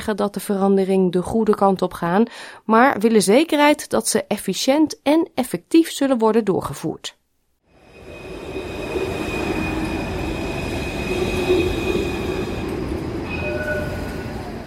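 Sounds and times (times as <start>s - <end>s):
speech: 0.0s - 7.2s
thin high-pitched wheel squeal: 7.8s - 14.5s
Melbourne tram or train rolling along rails: 7.8s - 14.6s.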